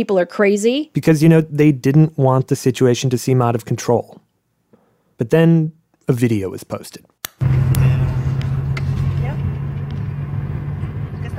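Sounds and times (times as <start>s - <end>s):
speech: 0.0s - 4.2s, 5.2s - 7.7s
low engine drone of a car driving: 7.4s - 11.3s
road rumble of a car driving: 7.4s - 11.3s.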